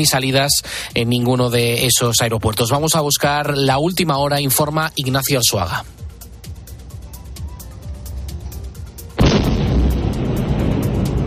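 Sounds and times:
speech: 0.0s - 6.0s
explosion of a downed drone: 9.2s - 11.2s.

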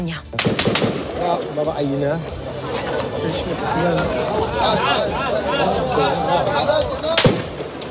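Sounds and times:
speech: 0.0s - 2.4s, 3.2s - 7.3s
army gunshots fired at diplomats in Jenin: 0.4s - 2.2s, 7.1s - 7.8s
crowd of agitated diplomats talking and shouting: 0.4s - 7.8s
laughter: 1.3s - 7.8s.

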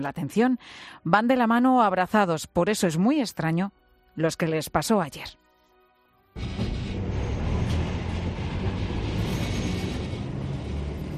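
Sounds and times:
speech: 0.0s - 5.4s, 6.4s - 6.6s
tram rumbling and rattling on rails: 6.4s - 11.1s.

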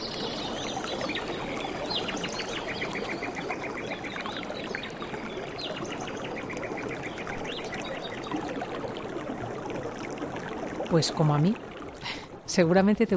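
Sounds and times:
birds chirping and calling: 0.0s - 8.4s
forest river flowing: 0.0s - 12.6s
speech: 10.9s - 11.7s, 12.5s - 13.1s.

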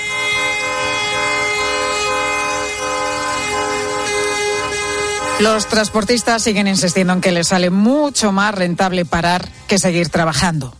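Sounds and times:
truck horns blaring during slow protest convoy by striking hauliers: 0.0s - 8.3s
speech: 5.4s - 10.7s.

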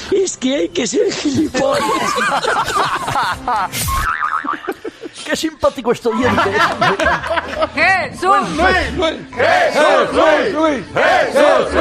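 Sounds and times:
speech: 0.1s - 4.2s, 5.3s - 11.7s
laughter: 1.0s - 8.8s
people clapping: 6.6s - 7.1s
crowd chanting: 8.7s - 11.7s
people shouting: 9.4s - 11.7s.

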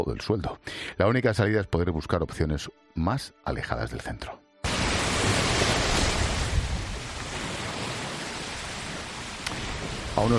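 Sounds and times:
speech: 0.0s - 4.4s, 10.2s - 10.3s
sea surf breaking near Guadalmar on the outskirts of Málaga: 4.6s - 10.3s.

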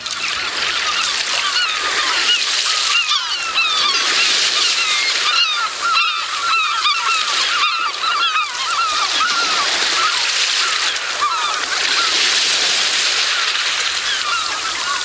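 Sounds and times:
flock of birds honking and calling: 0.0s - 12.4s, 13.2s - 15.0s
sea waves breaking on the shore: 0.0s - 15.0s.

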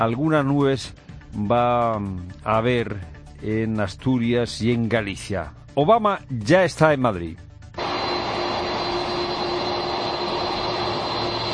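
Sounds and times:
speech: 0.0s - 7.5s
US presidential jet taxiing on the runway at Torrejón de Ardoz at night: 7.8s - 11.5s.

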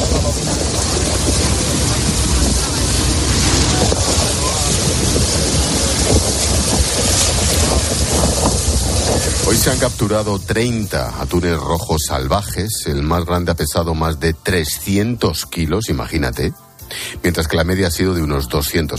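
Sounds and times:
low engine-like rumble of fishing boats: 0.0s - 12.7s
roar of wind and waves on open sea: 0.0s - 13.3s
speech: 9.7s - 18.9s.

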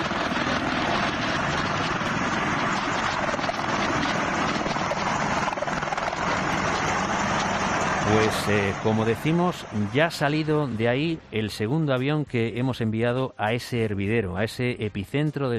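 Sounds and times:
helicopter rotor drone hovering overhead: 0.0s - 11.8s
speech: 8.3s - 15.5s.

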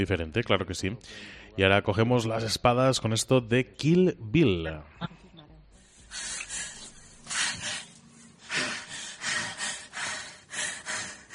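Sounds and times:
speech: 0.0s - 5.2s
heavy breathy panting: 1.0s - 1.6s, 5.8s - 11.3s.

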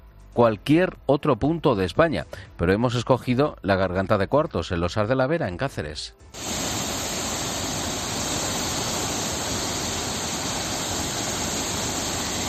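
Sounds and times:
speech: 0.4s - 6.9s
swollen mountain river rushing with rain and snowmelt: 6.4s - 12.4s.

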